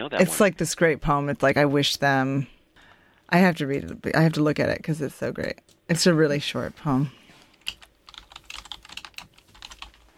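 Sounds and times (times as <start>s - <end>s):
speech: 0.0s - 2.6s, 3.3s - 7.2s
typing on a keyboard: 7.6s - 10.0s.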